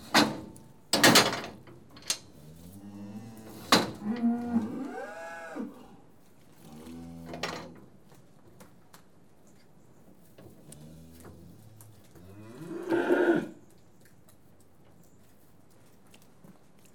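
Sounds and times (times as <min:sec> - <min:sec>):
cattle lowing while being tested: 0:02.6 - 0:06.0, 0:12.2 - 0:13.6.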